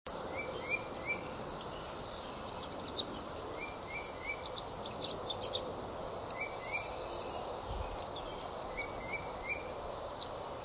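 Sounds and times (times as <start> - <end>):
white-throated sparrow miscellaneous sounds: 0.3 - 5.7, 6.3 - 10.4.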